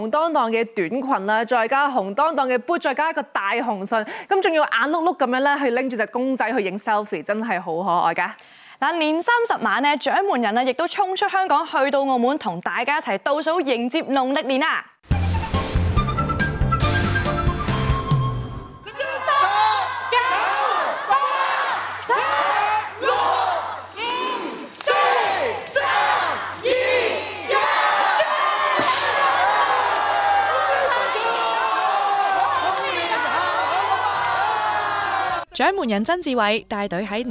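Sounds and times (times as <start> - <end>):
speech: 0.0 - 15.2, 35.6 - 37.3
short burst of music at a live Lunar New Year's Eve show in Macau: 15.0 - 18.9
audience cheering and whooping at a live Lunar New Year's Eve show in Macau: 18.8 - 35.5
large audience shouting in rhythmic bursts: 18.9 - 35.4.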